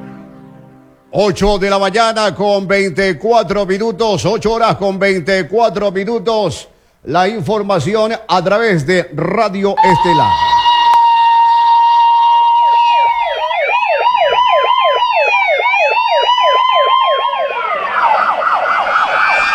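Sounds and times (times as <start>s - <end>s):
speech: 1.1s - 10.6s
fire truck sirens wailing and yelping: 9.8s - 19.5s.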